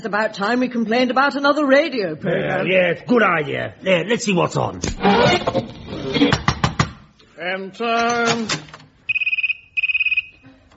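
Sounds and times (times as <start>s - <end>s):
speech: 0.0s - 6.4s, 7.4s - 8.8s
trimphone electronic warbling ring: 9.1s - 10.3s.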